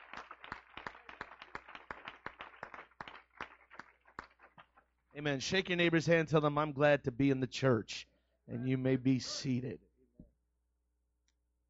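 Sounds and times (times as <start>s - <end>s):
audience clapping hands in praise: 0.0s - 4.9s
speech: 5.2s - 9.9s.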